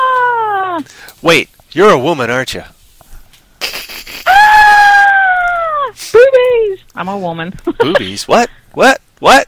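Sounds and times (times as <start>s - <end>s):
woman letting out a loud high-pitched scream: 0.0s - 0.8s, 4.3s - 6.7s
speech: 0.8s - 2.8s, 7.0s - 9.4s.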